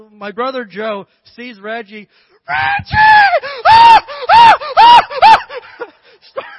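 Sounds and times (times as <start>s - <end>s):
speech: 0.0s - 5.4s
voice imitating excited high-pitched screaming: 2.5s - 5.6s.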